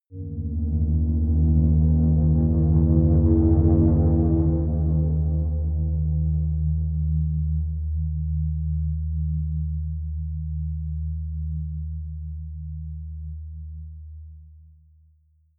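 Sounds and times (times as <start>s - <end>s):
deep soft hum drone: 0.1s - 14.7s.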